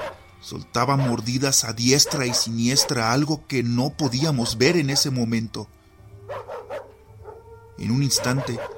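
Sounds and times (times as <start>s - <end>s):
dog barking: 0.0s - 0.3s, 0.9s - 3.2s, 4.4s - 5.2s, 6.2s - 8.7s
speech: 0.4s - 6.5s, 7.8s - 8.7s.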